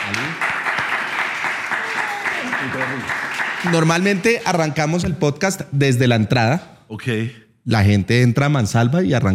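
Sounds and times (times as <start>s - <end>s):
crowd clapping loudly: 0.0s - 4.8s
speech: 0.1s - 0.5s, 2.6s - 9.3s
voices cheering and calling out: 1.7s - 3.8s.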